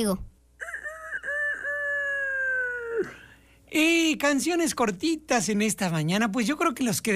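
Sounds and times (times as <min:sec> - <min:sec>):
speech: 0:00.0 - 0:00.3, 0:03.0 - 0:07.1
rooster crowing: 0:00.6 - 0:03.3.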